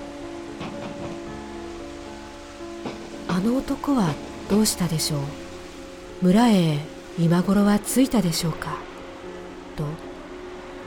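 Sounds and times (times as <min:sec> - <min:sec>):
stormy wind and rain beating on a door: 0:00.0 - 0:08.3
speech: 0:03.4 - 0:05.4, 0:06.2 - 0:08.9.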